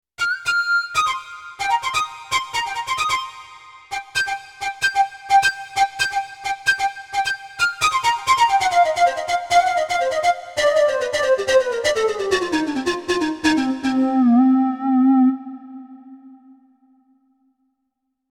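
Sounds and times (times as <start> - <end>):
pipe solo: 0.3 - 17.2.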